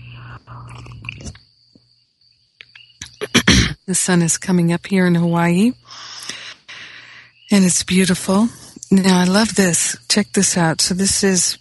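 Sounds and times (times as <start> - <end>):
steady high cricket-like chirp: 0.0 - 11.5
slurping sips of tea from a cup: 0.2 - 1.4
speech: 3.9 - 6.1, 7.5 - 11.5.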